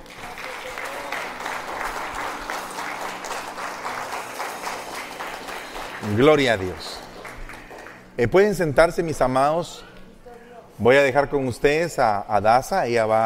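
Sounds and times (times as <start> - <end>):
audience applauding at a religious service: 0.0 - 8.6
speech: 6.0 - 7.0, 8.2 - 9.9, 10.8 - 13.2.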